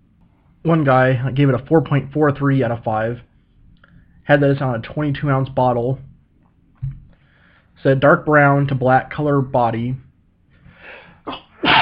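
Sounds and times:
speech: 0:00.6 - 0:03.3, 0:04.3 - 0:06.1, 0:07.8 - 0:10.0
person sneezing loudly: 0:10.9 - 0:11.8.

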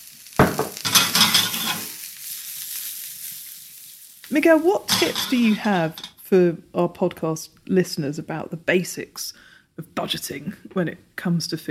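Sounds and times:
asparagus sizzling in hot oil in a pan: 0:00.0 - 0:06.3
speech: 0:04.3 - 0:11.6.

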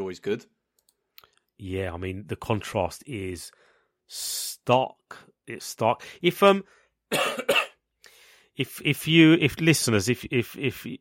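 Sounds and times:
speech: 0:00.1 - 0:00.6, 0:01.6 - 0:07.6, 0:08.6 - 0:10.9
harsh coughs from a person with a cough and a gravelly voice: 0:07.1 - 0:07.8.

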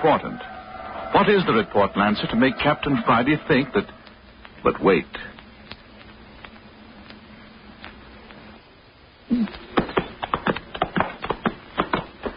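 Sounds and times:
speech: 0:00.0 - 0:04.0, 0:04.6 - 0:05.3
hooves of a ridden horse clip-clopping at a walk: 0:09.7 - 0:12.3.

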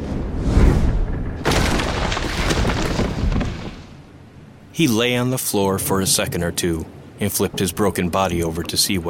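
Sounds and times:
crumbling debris: 0:01.1 - 0:04.0
body smashing through a wall: 0:01.4 - 0:04.0
speech: 0:04.8 - 0:09.0.

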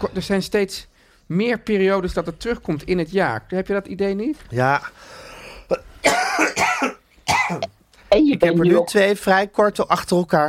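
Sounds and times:
speech: 0:00.0 - 0:05.8, 0:07.5 - 0:10.4
harsh raspy hacking coughs: 0:05.7 - 0:07.7.

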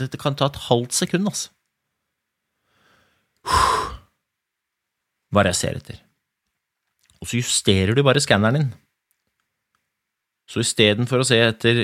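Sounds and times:
speech: 0:00.0 - 0:01.6, 0:05.3 - 0:06.1, 0:07.2 - 0:08.9, 0:10.5 - 0:11.8
long deep belly breath out: 0:02.6 - 0:04.1.

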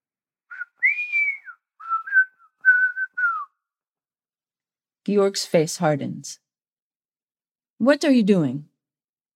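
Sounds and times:
person whistling a short melodic tune: 0:00.5 - 0:03.6
speech: 0:05.1 - 0:06.4, 0:07.8 - 0:08.7.

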